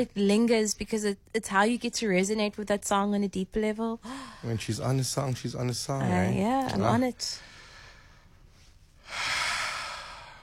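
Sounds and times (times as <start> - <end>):
speech: 0.0 - 7.6
single deep slow breath: 4.0 - 4.5, 7.4 - 8.4, 9.0 - 10.4.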